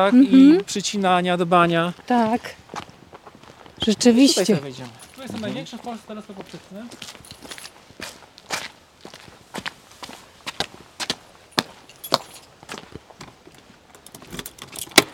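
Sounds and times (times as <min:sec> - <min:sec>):
speech: 0:00.0 - 0:02.9, 0:03.8 - 0:07.5
shuffling footsteps: 0:01.9 - 0:14.4
tour set keys jangling: 0:05.0 - 0:05.5, 0:07.1 - 0:07.8, 0:11.5 - 0:12.6, 0:13.9 - 0:15.1
door lock clicking open at an observatory: 0:14.0 - 0:15.1.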